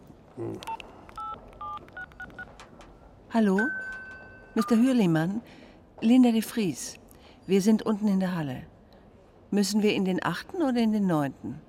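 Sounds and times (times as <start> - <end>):
mobile phone key tones while dialing a number: 0.7 - 2.5
speech: 3.3 - 3.8, 4.6 - 8.7, 9.5 - 11.6.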